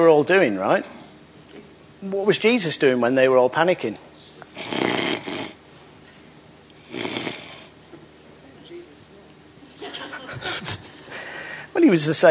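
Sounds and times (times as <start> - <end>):
speech: 0.0 - 1.0, 2.0 - 4.7, 11.9 - 12.2
person imitating snoring with loud raspy breaths: 4.5 - 5.6, 6.8 - 7.7
quieter noisy breathing: 4.5 - 6.0, 6.8 - 7.8, 10.4 - 11.8
laughter: 9.7 - 11.1.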